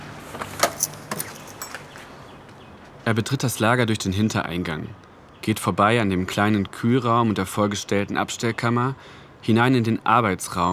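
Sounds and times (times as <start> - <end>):
key jingling and clicking as it unlocks a back-entrance door lock: 0.3 - 2.0
speech: 3.1 - 10.7.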